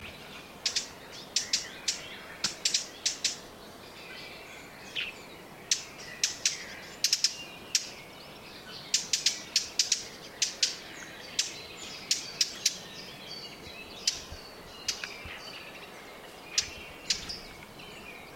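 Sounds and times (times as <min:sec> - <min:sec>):
blackcap Sylvia atricapilla singing: 0:00.7 - 0:15.8, 0:16.5 - 0:18.3.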